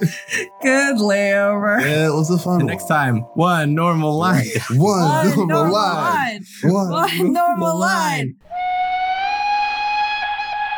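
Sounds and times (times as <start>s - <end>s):
speech: 0.0s - 8.7s
laughter: 1.8s - 3.2s, 4.2s - 8.2s
train whistle as a train arrives: 8.4s - 10.7s.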